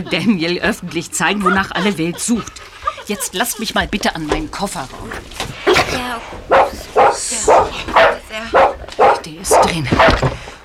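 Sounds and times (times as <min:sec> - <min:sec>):
laughter: 0:00.0 - 0:08.5
speech: 0:00.0 - 0:08.6, 0:09.3 - 0:10.4
dog barking: 0:05.7 - 0:10.3.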